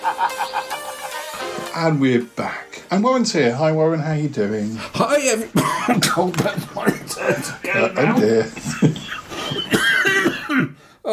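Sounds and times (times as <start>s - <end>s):
speech: 0.0s - 0.9s, 1.8s - 9.0s, 10.6s - 11.1s
laughter: 0.0s - 1.7s, 5.6s - 10.0s
raspy cough: 5.6s - 10.8s.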